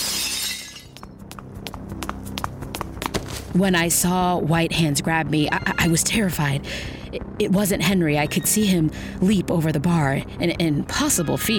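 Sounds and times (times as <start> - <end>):
glass shards landing and skittering: 0.0 - 0.9
glass shattering: 0.0 - 1.0
speech: 3.6 - 11.5.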